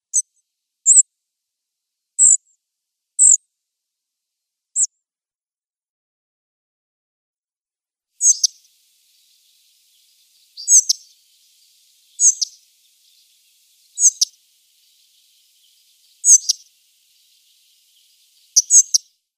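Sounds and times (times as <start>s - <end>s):
spotted flycatcher calls: 8.2s - 19.2s.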